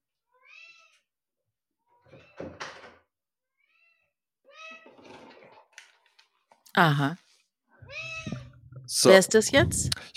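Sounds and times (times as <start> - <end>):
cat meowing: 0.3 - 1.1, 3.6 - 5.0, 7.8 - 8.6
speech: 6.8 - 7.2, 9.0 - 10.1.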